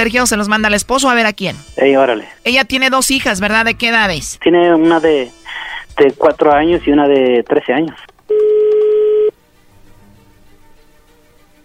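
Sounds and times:
speech: 0.0s - 8.1s
steady electronic telephone tone as a phone call is placed: 8.3s - 9.4s.

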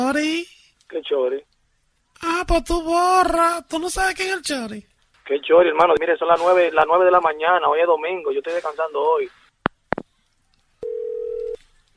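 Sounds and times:
speech: 0.1s - 1.5s, 2.2s - 9.4s
telephone dial tone after the call is hung up: 10.8s - 11.6s.

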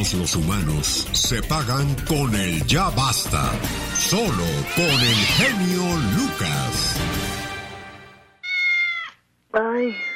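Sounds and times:
speech: 0.0s - 7.4s, 9.6s - 10.1s
cat meowing: 3.8s - 5.6s, 8.4s - 10.1s.

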